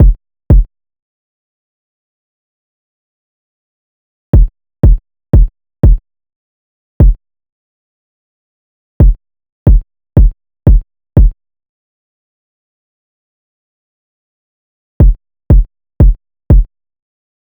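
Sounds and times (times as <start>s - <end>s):
90 BPM kick drum loop: 0.0s - 0.7s, 4.4s - 6.0s, 9.0s - 11.4s, 15.0s - 16.7s.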